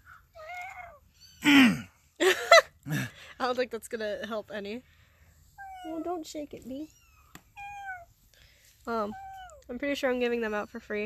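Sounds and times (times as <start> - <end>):
cat meowing with descending tone: 0.3 - 1.5, 6.9 - 8.2, 9.1 - 9.6
speech: 1.4 - 1.8, 3.5 - 5.0, 5.8 - 7.0, 8.8 - 11.0.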